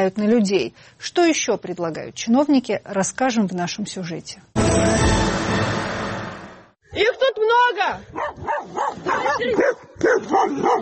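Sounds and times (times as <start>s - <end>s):
speech: 0.0s - 5.9s, 7.6s - 10.8s
several stray dogs barking and yipping: 8.1s - 10.8s.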